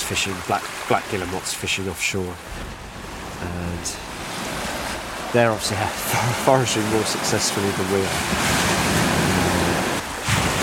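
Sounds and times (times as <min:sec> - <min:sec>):
sea waves breaking against a rocky shore: 0:00.0 - 0:10.6
speech: 0:00.1 - 0:02.8, 0:03.4 - 0:04.2, 0:05.3 - 0:08.6
wind buffeting: 0:02.3 - 0:10.6.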